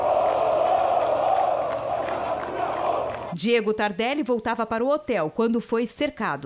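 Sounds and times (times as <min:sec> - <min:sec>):
crowd of football fans shouting and chanting in protest: 0:00.0 - 0:03.3
speech: 0:03.4 - 0:06.4.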